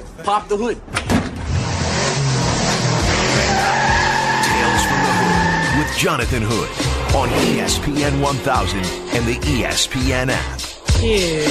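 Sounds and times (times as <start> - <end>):
speech: 0.2 - 1.4, 6.0 - 11.4
race car tires skidding and squealing across pavement: 1.4 - 10.3
rumbling race car engine: 1.4 - 11.0.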